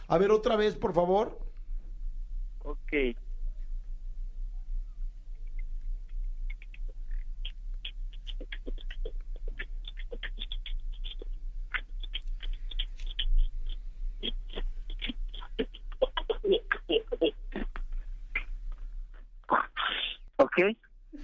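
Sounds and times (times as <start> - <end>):
speech: 0.1 - 1.5, 2.6 - 3.2, 20.6 - 20.8
quiet beatboxing with clicks, pops and hissing mouth bursts: 4.5 - 20.7.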